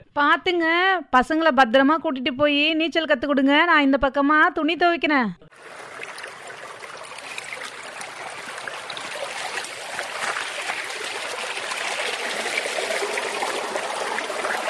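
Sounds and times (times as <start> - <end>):
speech: 0.2 - 5.8
stream water flowing: 5.5 - 14.6.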